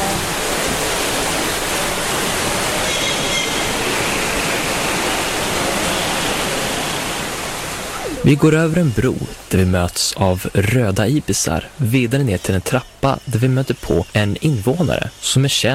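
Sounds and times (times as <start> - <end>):
waterfall in indoor rainforest exhibit: 0.0 - 14.8
speech: 8.2 - 15.7.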